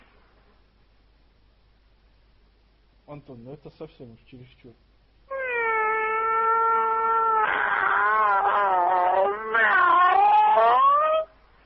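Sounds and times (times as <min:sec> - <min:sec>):
speech: 0:03.1 - 0:04.9
man imitating a cat meowing: 0:05.3 - 0:11.3.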